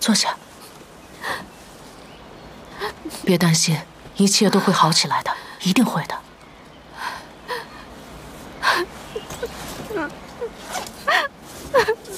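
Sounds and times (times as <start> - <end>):
speech: 0.0 - 0.4, 3.0 - 6.2
daughter crying and whimpering while being comforted: 8.6 - 12.1.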